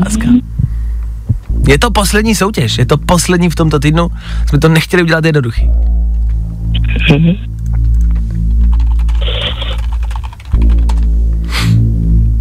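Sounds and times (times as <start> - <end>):
steady low electrical hum: 0.0 - 12.3
speech: 1.7 - 6.0, 7.0 - 7.5
tapping on a computer keyboard: 7.7 - 11.1.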